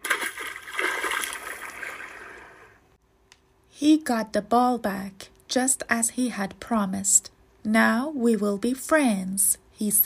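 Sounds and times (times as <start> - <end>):
splash of a frog jumping into a pond: 0.0 - 2.7
speech: 3.8 - 10.0.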